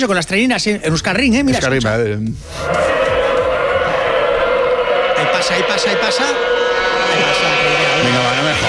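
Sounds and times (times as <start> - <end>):
speech: 0.0 - 3.2, 5.4 - 8.6
engines roaring past during free practice sessions: 2.5 - 8.6.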